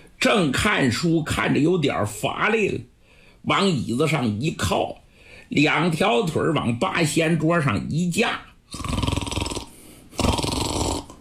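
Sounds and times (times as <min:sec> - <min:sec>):
speech: 0:00.2 - 0:09.0
human voice imitating thunderous snoring of a sleeping man: 0:08.7 - 0:11.1.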